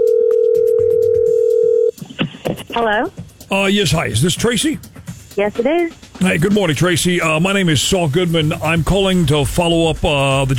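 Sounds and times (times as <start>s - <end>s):
telephone dial tone: 0.0s - 1.9s
speech: 2.8s - 10.5s.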